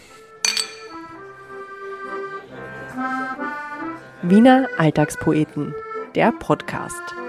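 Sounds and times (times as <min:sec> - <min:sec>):
glasses clinking in a toast: 0:00.4 - 0:01.2
speech: 0:04.2 - 0:07.2.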